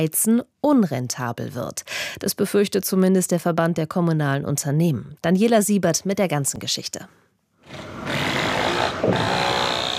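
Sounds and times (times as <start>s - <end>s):
speech: 0.0s - 8.3s, 9.0s - 9.5s
construction machinery grinding and whirring pouring a foundation slab in Berlin: 7.7s - 9.9s.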